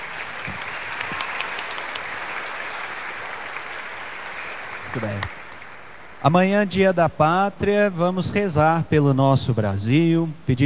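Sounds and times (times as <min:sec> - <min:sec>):
crowd applauding: 0:00.0 - 0:08.5
speech: 0:05.0 - 0:05.4, 0:06.2 - 0:10.6.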